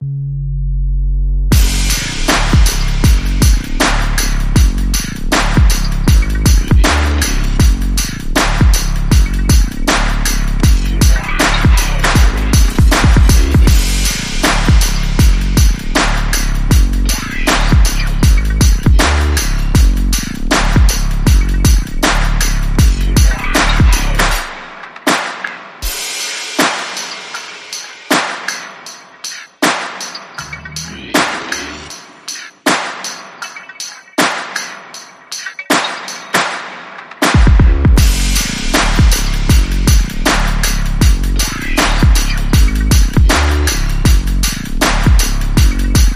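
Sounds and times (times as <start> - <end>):
bass: 0.0 - 24.5, 30.4 - 31.9, 37.4 - 46.1
groove: 0.5 - 46.1.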